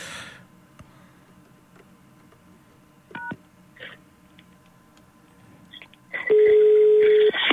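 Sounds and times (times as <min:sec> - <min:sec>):
steady electronic telephone tone: 0:06.1 - 0:07.4.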